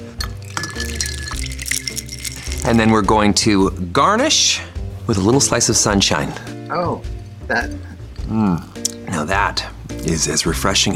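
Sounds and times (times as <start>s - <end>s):
gin cocktail stirred in a glass clinking: 0.2s - 3.0s
speech: 2.6s - 10.9s.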